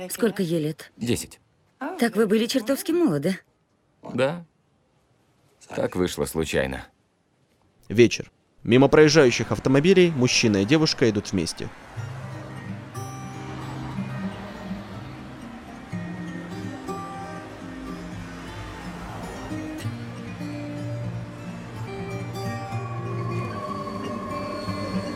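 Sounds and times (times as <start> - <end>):
speech: 0.0 - 1.4, 2.0 - 4.5, 5.6 - 6.9, 7.9 - 12.1
subway train rumbling: 9.0 - 25.1.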